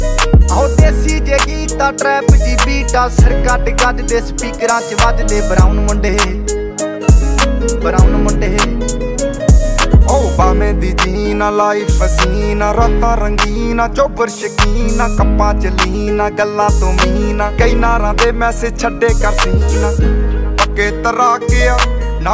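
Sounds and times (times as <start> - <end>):
trap beat ringtone: 0.0 - 22.3.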